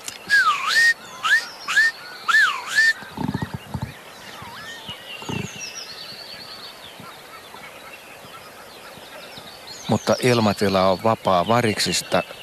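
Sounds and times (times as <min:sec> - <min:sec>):
Northern Lapwing display calls over flooded fields in Lohja Finland: 0:00.2 - 0:09.4
speech: 0:10.0 - 0:12.4.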